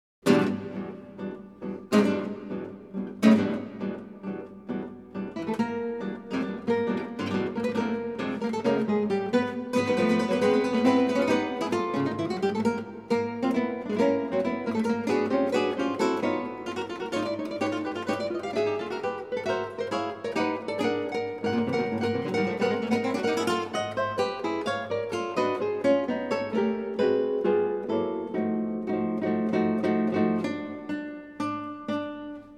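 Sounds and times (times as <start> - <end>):
guitar quartet playing a march: 0.2 - 32.5.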